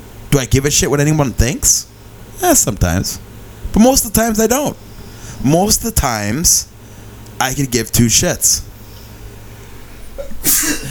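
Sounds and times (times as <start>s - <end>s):
speech: 0.3s - 6.7s, 7.4s - 8.7s
loud sneeze: 10.2s - 10.8s.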